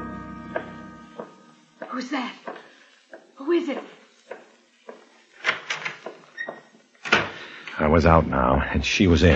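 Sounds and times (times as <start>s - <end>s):
speech: 2.0s - 2.5s, 3.4s - 4.0s, 7.9s - 9.3s
door swinging shut with a knock: 5.4s - 7.4s.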